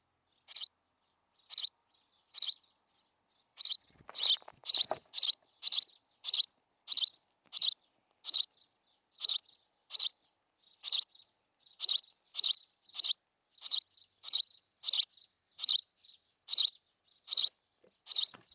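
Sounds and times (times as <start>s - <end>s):
house sparrow Passer domesticus chirping: 0.3s - 18.5s.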